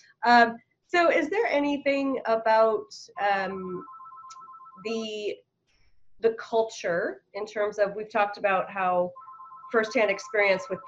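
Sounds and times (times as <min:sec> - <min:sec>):
speech: 0:00.2 - 0:04.0, 0:04.8 - 0:05.5, 0:06.2 - 0:10.8
mobile phone ringing: 0:03.8 - 0:04.9, 0:09.1 - 0:10.8.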